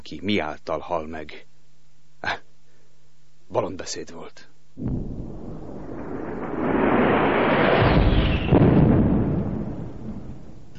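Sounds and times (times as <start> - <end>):
speech: 0.1 - 1.5, 2.2 - 2.5, 3.5 - 5.3
loud explosion with deep rolling roar: 4.8 - 10.6.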